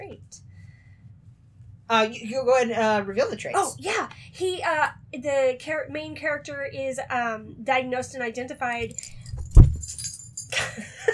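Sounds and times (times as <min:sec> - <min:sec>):
speech: 0:00.1 - 0:00.5, 0:01.9 - 0:09.2
metallic jingling: 0:08.7 - 0:10.6
dull thump: 0:09.1 - 0:10.0.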